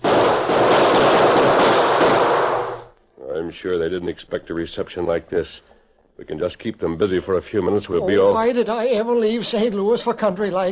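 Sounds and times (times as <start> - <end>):
continuous barrage of gunfire: 0.0 - 2.9
speech: 3.5 - 10.7.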